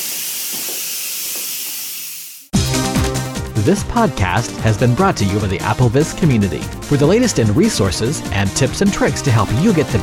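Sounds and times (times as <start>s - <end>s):
steam hissing from an appliance: 0.0s - 2.5s
music: 2.5s - 10.0s
speech: 3.6s - 10.0s.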